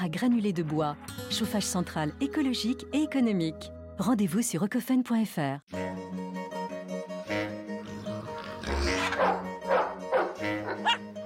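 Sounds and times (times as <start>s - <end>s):
speech: 0.0s - 6.1s
dog barking: 8.9s - 11.2s.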